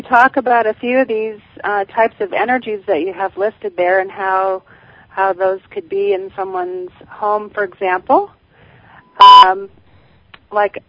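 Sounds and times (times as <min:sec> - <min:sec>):
speech: 0:00.1 - 0:08.4, 0:09.2 - 0:09.8, 0:10.5 - 0:10.8
short electronic beep on a phone line: 0:09.2 - 0:09.5.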